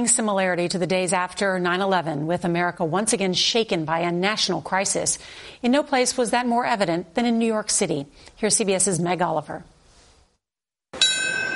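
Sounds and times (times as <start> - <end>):
speech: 0.0 - 9.7
memorial bell chime: 11.0 - 11.5.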